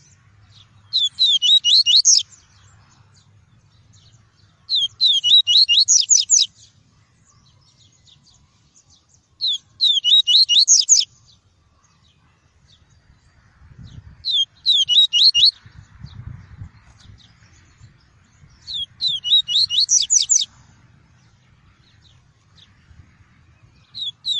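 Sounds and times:
tui-tui seedeater song of sweet swooping whistles: 0:00.9 - 0:02.3, 0:04.7 - 0:06.5, 0:09.4 - 0:11.1, 0:14.2 - 0:15.6, 0:18.6 - 0:20.5, 0:23.8 - 0:24.3.

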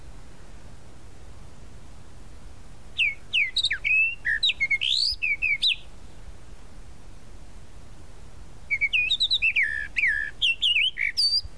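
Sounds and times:
Tropical mockingbird singing sweet whistled phrases: 0:03.0 - 0:05.9, 0:08.7 - 0:11.5.

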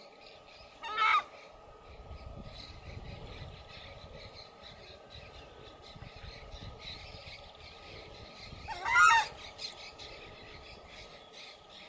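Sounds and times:
faint continuous hum: 0:00.0 - 0:11.8
southern screamer loud rising trumpeting honk: 0:00.8 - 0:01.3, 0:08.7 - 0:09.4.

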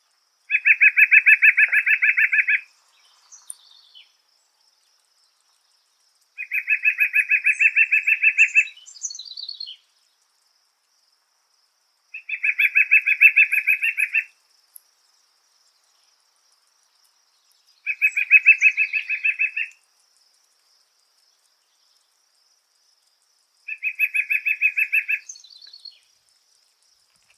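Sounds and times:
white-breasted woodpecker call: 0:00.5 - 0:02.7, 0:06.4 - 0:09.8, 0:12.2 - 0:14.4, 0:17.8 - 0:19.8, 0:23.7 - 0:26.0.

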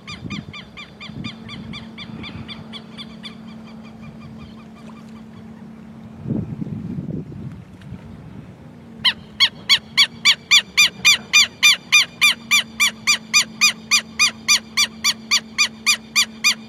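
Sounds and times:
southern lapwing uttering harsh repeated notes: 0:00.0 - 0:05.4, 0:09.0 - 0:16.6
low rumbling: 0:00.0 - 0:16.6
steady low hum: 0:00.0 - 0:16.6.

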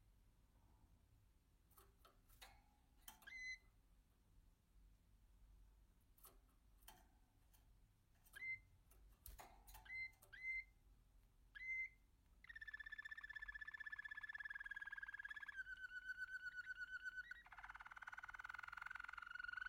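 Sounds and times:
American canary song with sharp chips, clicks and rolling trills: 0:03.0 - 0:03.7, 0:08.2 - 0:10.8, 0:11.4 - 0:19.6.

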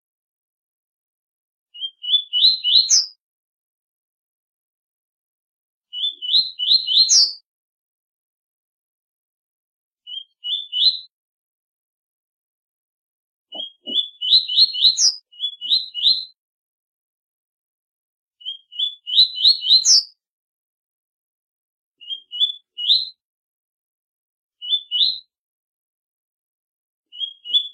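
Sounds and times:
double-collared seedeater singing rising whistled phrases: 0:01.7 - 0:03.2, 0:05.9 - 0:07.4, 0:10.0 - 0:11.1, 0:13.5 - 0:16.4, 0:18.4 - 0:20.2, 0:22.0 - 0:23.2, 0:24.6 - 0:25.3, 0:27.1 - 0:27.7.

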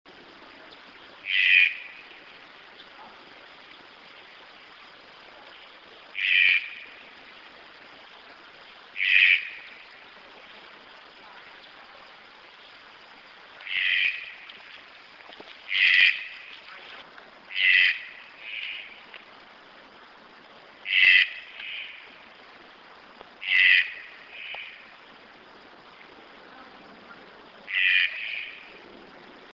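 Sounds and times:
green-billed toucan calling: 0:01.2 - 0:02.0, 0:06.2 - 0:07.0, 0:09.0 - 0:09.8, 0:13.6 - 0:14.4, 0:15.7 - 0:16.6, 0:17.5 - 0:19.0, 0:20.8 - 0:22.1, 0:23.4 - 0:24.9, 0:27.7 - 0:28.7.

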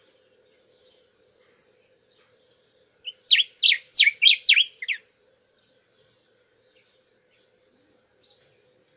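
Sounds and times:
Diuca finch singing: 0:00.0 - 0:08.9
faint high chirp: 0:02.1 - 0:08.9.

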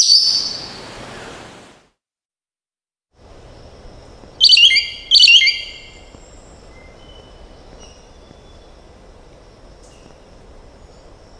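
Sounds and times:
green oriole giving loud strident phrases: 0:03.4 - 0:11.2.

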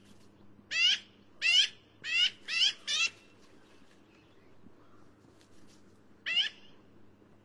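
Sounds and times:
soft background noise: 0:00.0 - 0:07.4
black-billed magpie Pica hudsonia giving harsh nasal squawks: 0:00.7 - 0:03.2, 0:06.3 - 0:06.6.

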